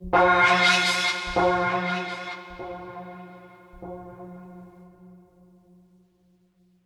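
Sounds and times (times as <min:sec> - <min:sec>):
mysterious string music: 0:00.0 - 0:04.2.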